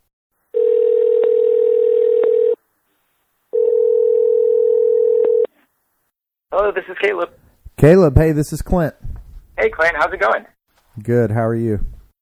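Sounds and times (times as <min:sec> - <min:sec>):
telephone tone: 0:00.5 - 0:02.6, 0:03.5 - 0:05.5
speech: 0:06.7 - 0:09.1, 0:09.7 - 0:11.9.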